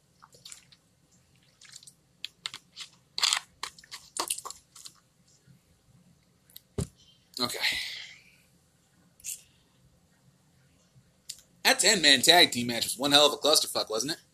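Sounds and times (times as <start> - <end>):
person drinking water: 0.2 - 0.8, 1.4 - 2.4
speech: 11.8 - 14.3.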